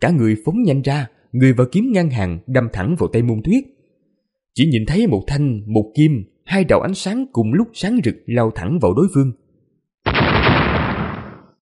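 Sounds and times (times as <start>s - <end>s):
speech: 0.0s - 3.8s, 4.6s - 9.4s
violent explosion sound effect: 10.1s - 11.6s.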